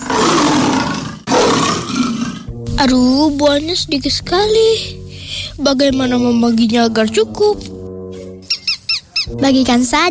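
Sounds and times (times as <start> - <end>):
lion roaring: 0.0 - 2.6
speech: 2.8 - 5.0, 5.6 - 7.8, 9.3 - 10.0.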